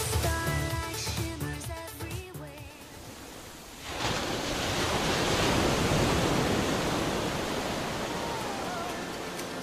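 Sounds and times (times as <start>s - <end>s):
music: 0.0s - 3.1s, 8.7s - 9.6s
ocean waves washing onto shore: 2.6s - 9.6s.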